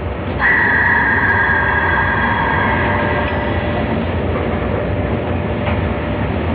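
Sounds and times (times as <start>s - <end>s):
sleeper express train running heard from driver's cab: 0.0s - 6.5s
high-pitched whine from train wheels or motor: 0.3s - 5.1s.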